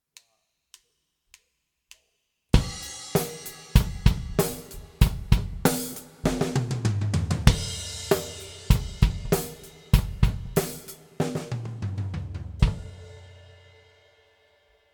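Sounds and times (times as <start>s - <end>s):
drum recording with delay mix: 2.6s - 13.6s.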